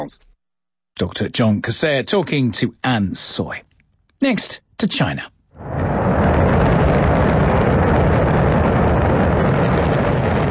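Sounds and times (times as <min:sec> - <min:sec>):
speech: 0:00.0 - 0:00.3, 0:01.0 - 0:05.4
rocket blasting off: 0:05.6 - 0:10.4.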